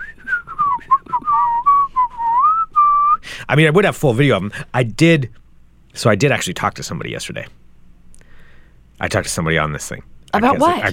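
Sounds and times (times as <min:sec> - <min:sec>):
person whistling a wavering sliding tune: 0:00.0 - 0:03.2
speech: 0:03.5 - 0:05.4, 0:06.0 - 0:07.6, 0:09.0 - 0:10.9.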